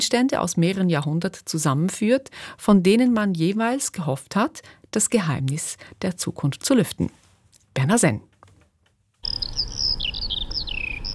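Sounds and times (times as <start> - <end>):
speech: 0.0 - 7.2, 7.8 - 8.3
Eurasian skylark singing while gliding down to the ground: 9.2 - 11.1.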